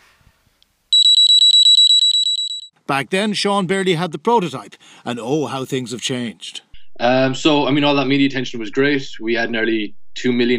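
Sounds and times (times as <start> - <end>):
overheat detector's inbuilt electronic alarm beeping: 0.9 - 2.7
speech: 2.9 - 10.5.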